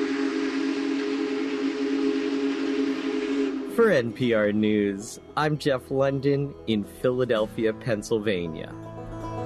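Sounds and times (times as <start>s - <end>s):
Big Boy steam locomotive whistle: 0.0s - 5.4s
speech: 3.8s - 9.0s.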